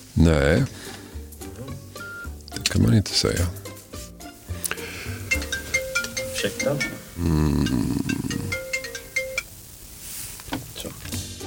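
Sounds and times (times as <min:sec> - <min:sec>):
quiet noise: 0:00.0 - 0:11.4
speech: 0:00.2 - 0:01.0, 0:02.7 - 0:03.6, 0:06.4 - 0:08.2
mobile phone ringtone, bright electronic melody: 0:02.0 - 0:02.3, 0:04.9 - 0:09.4.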